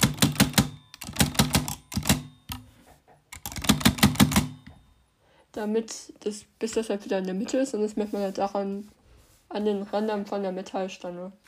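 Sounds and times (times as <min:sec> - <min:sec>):
typewriter space bar pressed to shift the carriage: 0:00.0 - 0:02.6, 0:03.4 - 0:04.6
speech: 0:05.6 - 0:11.4.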